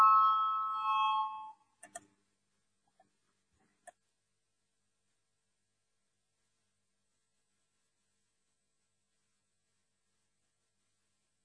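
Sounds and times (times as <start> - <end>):
bell rung in a parliament chamber to call a vote: 0.0 - 1.6
faint clicks: 1.8 - 2.1.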